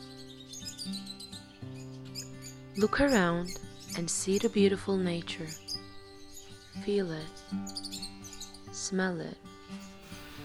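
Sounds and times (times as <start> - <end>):
speech: 2.8 - 5.6, 6.8 - 8.0, 8.8 - 9.5
birds chirping and twittering among trees: 9.9 - 10.4
low sustained humming drone: 9.9 - 10.4.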